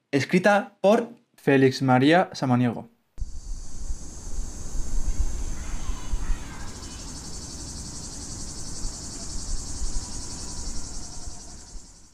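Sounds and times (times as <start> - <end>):
speech: 0.1 - 2.9
faint chirps: 3.2 - 12.1
high-pitched cicada drone: 3.2 - 12.1.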